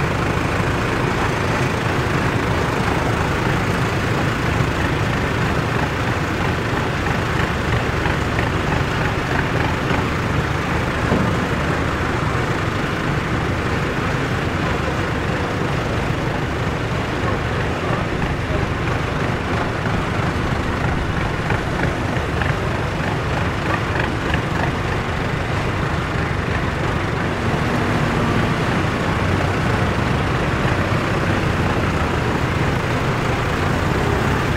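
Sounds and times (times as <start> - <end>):
tractor engine idling on a farm: 0.0 - 34.5.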